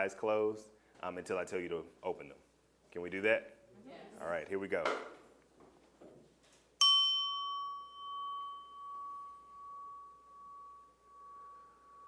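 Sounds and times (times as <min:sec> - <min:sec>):
speech: 0:00.0 - 0:05.2
single bell struck and ringing: 0:06.8 - 0:12.0.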